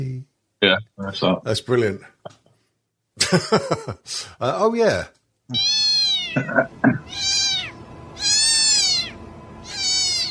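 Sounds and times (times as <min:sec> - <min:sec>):
speech: 0:00.0 - 0:02.4, 0:03.2 - 0:07.4
laughter: 0:03.2 - 0:04.5
cat meowing played back from a video: 0:05.5 - 0:10.2.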